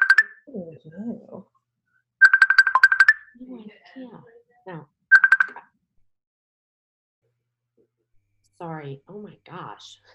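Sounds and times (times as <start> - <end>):
electronic call ringtone ringing on a computer: 0.0 - 0.4, 2.2 - 3.4, 5.1 - 5.6
speech: 0.8 - 1.6, 3.5 - 4.9, 8.6 - 10.1.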